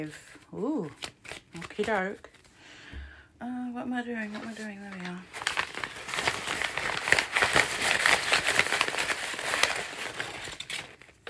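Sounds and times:
speech: 0.0 - 2.4, 3.4 - 5.4
small paper scraps crumpled inside an envelope: 0.0 - 2.5, 4.2 - 11.2.

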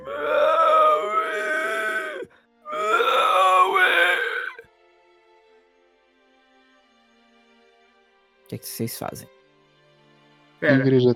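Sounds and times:
hunchbacked man groaning and wailing without words: 0.0 - 4.6
speech: 8.5 - 9.4, 10.6 - 11.1.

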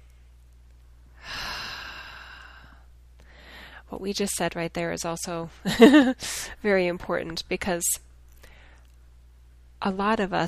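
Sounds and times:
deep breath: 1.2 - 3.9, 8.4 - 8.9
speech: 3.9 - 8.1, 9.8 - 10.4.

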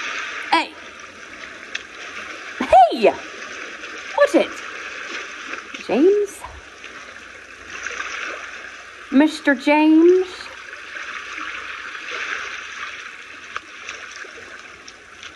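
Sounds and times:
water splashing from boys playing in the water: 0.0 - 15.3
person calling out loudly: 0.5 - 0.8, 2.6 - 3.2
speech: 3.0 - 3.4, 4.3 - 4.6, 5.9 - 6.3, 9.2 - 10.4.

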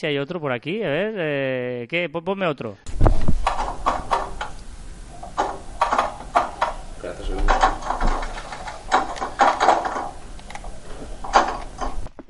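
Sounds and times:
speech: 0.0 - 3.0
pinball machine playing: 3.4 - 12.1.

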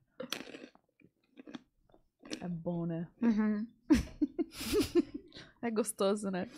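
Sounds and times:
crunchy chewing of a salty snack: 0.2 - 2.4
speech: 2.4 - 6.5.

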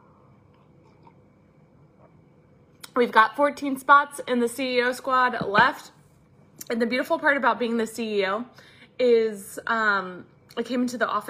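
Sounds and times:
person sipping coffee with soft slurping and swallowing: 0.3 - 2.2
speech: 3.0 - 6.0, 6.7 - 11.2.

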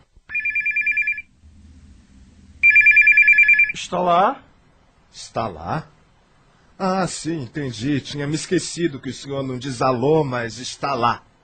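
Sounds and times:
telephone ringing with fast trilling electronic ring on an outgoing call: 0.3 - 1.3, 2.6 - 3.8
low hum: 0.3 - 5.2
speech: 3.8 - 4.5, 5.1 - 6.0, 6.8 - 11.3.

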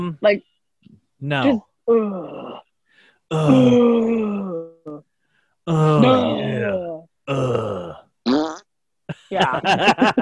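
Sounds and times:
speech: 0.0 - 0.5, 1.2 - 2.6, 3.3 - 7.7, 9.3 - 10.2
man groaning and moaning during a massage: 3.3 - 4.7, 5.7 - 8.0
laughter: 9.1 - 10.2.

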